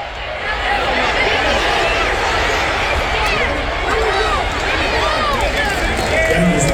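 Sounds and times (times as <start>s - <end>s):
huge American football stadium crowd cheering and shouting: 0.0s - 6.7s.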